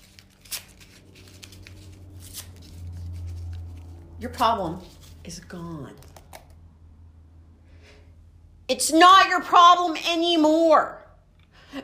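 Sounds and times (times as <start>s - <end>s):
paper being torn up: 0.0s - 6.4s
steady low hum: 0.0s - 11.8s
speech: 4.2s - 6.1s, 8.8s - 11.0s.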